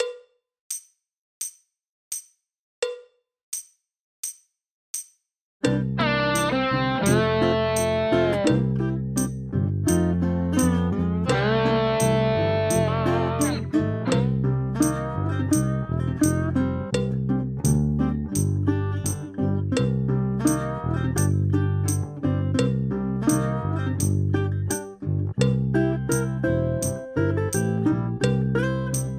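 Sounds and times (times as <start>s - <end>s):
drum kit playing along to a backing track: 5.7s - 24.8s, 25.4s - 28.4s
backing track music: 5.7s - 29.1s.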